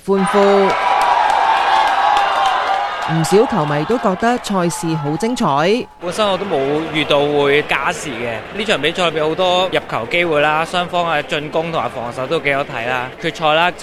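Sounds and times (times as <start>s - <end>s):
individual shouts and whoops: 0.2s - 8.3s
football fans cheering at a goal: 0.2s - 13.8s
laughter: 0.2s - 13.8s.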